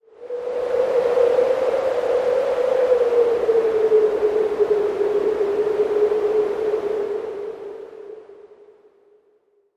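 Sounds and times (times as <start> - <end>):
wind howling: 0.0 - 9.0.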